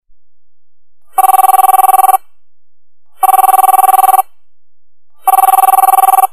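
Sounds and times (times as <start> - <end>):
phone ringing: 1.1 - 2.2, 3.2 - 4.3, 5.2 - 6.3.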